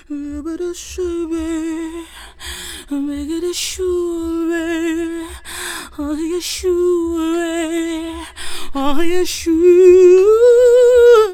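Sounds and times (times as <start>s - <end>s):
hip hop with female vocals: 0.0s - 11.3s.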